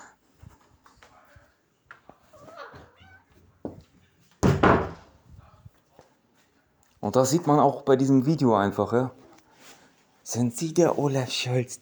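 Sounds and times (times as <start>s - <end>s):
cats meowing and yowling while mounting each other: 2.2s - 3.6s
knocks: 4.4s - 5.1s
speech: 7.0s - 9.2s, 10.3s - 11.8s.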